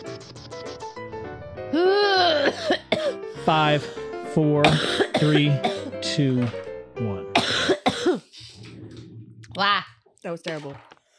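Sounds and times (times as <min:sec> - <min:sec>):
harsh strained person coughing: 0:02.4 - 0:03.2, 0:04.6 - 0:05.9, 0:07.4 - 0:08.3
speech: 0:03.4 - 0:07.2, 0:10.3 - 0:10.9
throat clearing: 0:04.6 - 0:05.9.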